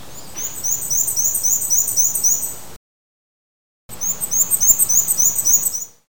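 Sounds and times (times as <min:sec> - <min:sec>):
Black and White Warbler: 0:00.0 - 0:02.7, 0:03.9 - 0:06.0.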